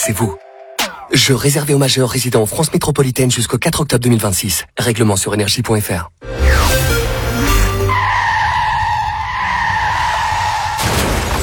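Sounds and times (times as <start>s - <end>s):
speech: 0.0s - 0.4s, 1.1s - 6.4s
car crash: 6.4s - 11.4s
car tires squealing in a long screech: 6.4s - 11.4s.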